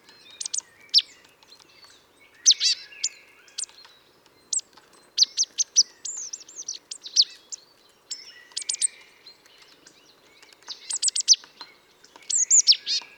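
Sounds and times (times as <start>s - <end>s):
faint background noise: 0.0s - 13.1s
marsh tit (Poecile palustris) calls: 0.3s - 1.2s, 4.5s - 7.6s, 8.2s - 9.0s, 10.4s - 13.1s.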